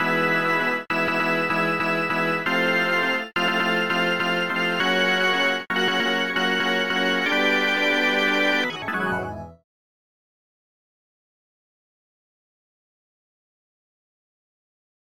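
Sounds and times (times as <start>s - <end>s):
organ: 0.0s - 9.6s.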